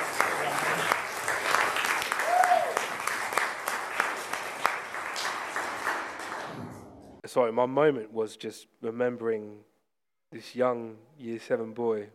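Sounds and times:
audience applause: 0.0s - 6.5s
speech: 7.3s - 9.7s, 10.3s - 12.1s.

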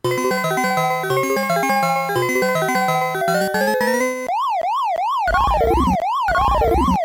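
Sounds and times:
bright beeping chiptune melody from an arcade video game: 0.0s - 4.6s, 5.3s - 7.0s
loud rapid siren-like electronic warble from an arcade video game: 3.8s - 7.0s.

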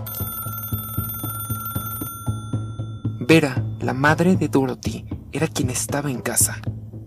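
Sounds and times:
old-fashioned telephone bell ringing: 0.0s - 3.7s
speech: 3.3s - 6.7s.

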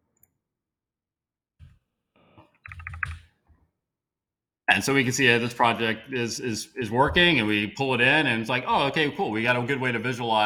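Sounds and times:
typing on a computer keyboard: 2.6s - 3.2s
speech: 4.8s - 10.4s.

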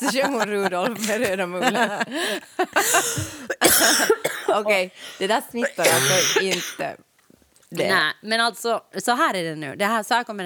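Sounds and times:
laughter: 0.0s - 3.6s
speech: 0.0s - 7.1s, 7.7s - 10.4s
wheezy gasps: 2.1s - 3.6s, 4.9s - 5.4s
person coughing in a prolonged coughing fit: 2.8s - 4.8s, 5.6s - 6.9s.

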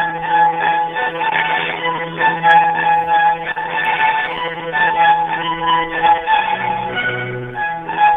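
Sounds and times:
tinny band-limited ringback music over a phone line: 0.0s - 8.1s.

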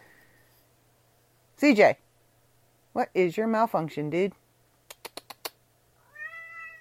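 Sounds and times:
faint low hum: 0.0s - 6.7s
speech: 1.6s - 2.0s, 3.0s - 4.4s
sharp clicks or taps: 4.9s - 5.6s
cat meowing: 6.0s - 6.7s.

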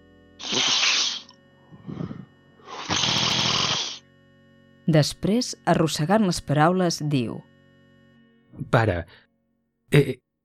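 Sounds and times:
person snorting mucus back through the nose: 0.4s - 4.0s
speech: 4.9s - 7.5s, 8.6s - 9.2s, 9.9s - 10.2s.

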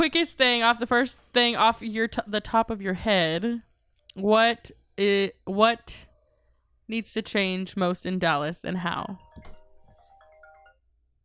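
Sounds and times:
speech: 0.0s - 6.1s, 6.9s - 9.5s
mobile phone ringtone: 9.2s - 10.9s.

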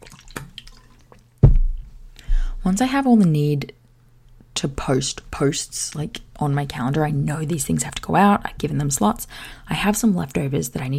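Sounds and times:
sipping water: 0.0s - 1.3s
speech: 2.6s - 3.8s, 4.6s - 10.9s.

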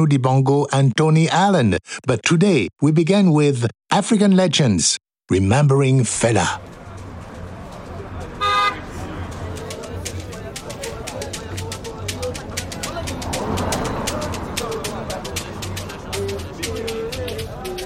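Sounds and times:
speech: 0.0s - 6.7s
busy street's steady traffic rumble: 5.6s - 17.8s
crowd murmur: 6.6s - 17.8s
short loud car horn toot on a busy street: 8.4s - 9.0s.

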